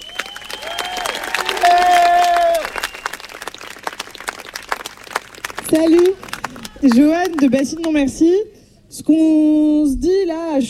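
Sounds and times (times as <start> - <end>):
shrill sustained whistle or cheer: 0.0 - 3.3
outdoor crowd applauding with dense steady clapping: 0.0 - 8.0
speech: 5.7 - 10.6.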